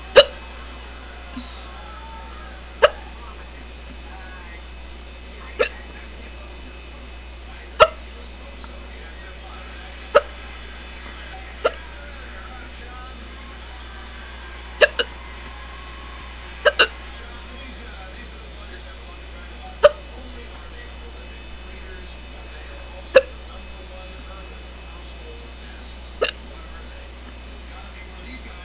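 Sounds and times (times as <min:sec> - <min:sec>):
quiet hum: 0:00.0 - 0:28.6
person hiccuping sharply: 0:02.8 - 0:03.0, 0:05.6 - 0:05.8, 0:10.1 - 0:10.3, 0:23.2 - 0:23.4, 0:26.2 - 0:26.4.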